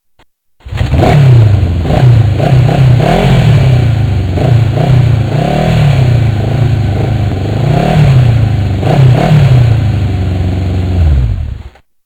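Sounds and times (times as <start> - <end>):
Apache engine revving: 0.6 - 11.7.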